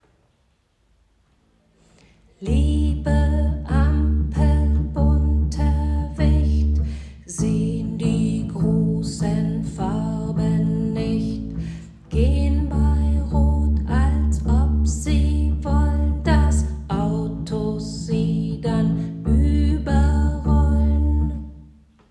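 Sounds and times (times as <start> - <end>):
bass plucked pizzicato: 2.4 - 21.6.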